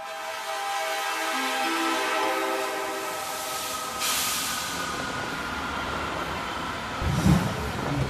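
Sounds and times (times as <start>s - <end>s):
train on high-altitude railway to Lhasa rumbling along: 0.0s - 8.0s.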